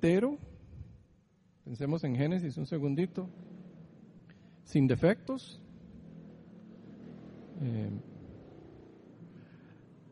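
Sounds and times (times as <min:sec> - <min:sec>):
speech: 0:00.0 - 0:00.4, 0:01.7 - 0:03.6, 0:04.7 - 0:05.6, 0:07.6 - 0:08.1
motorcycle without a muffler revving: 0:02.8 - 0:10.1
man voicing hesitation: 0:07.6 - 0:08.1.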